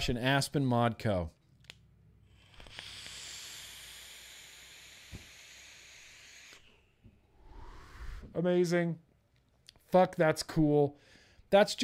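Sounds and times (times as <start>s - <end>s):
speech: 0.0s - 1.4s, 8.4s - 9.1s, 9.9s - 11.8s
vape draw hissing on a rebuildable atomizer: 2.2s - 6.8s.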